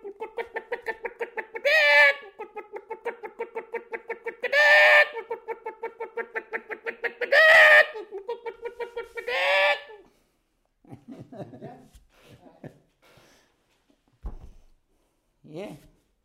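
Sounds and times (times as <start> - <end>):
person imitating hen clucking: 0.0 - 10.0
laughter: 10.8 - 12.9
person speaking: 15.4 - 16.0.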